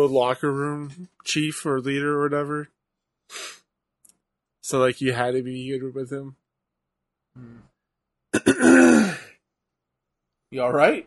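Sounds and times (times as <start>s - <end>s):
speech: 0.0s - 3.6s, 4.6s - 6.4s, 7.4s - 7.7s, 8.3s - 9.2s, 10.5s - 11.0s
throat clearing with phlegm in the throat: 8.4s - 9.4s.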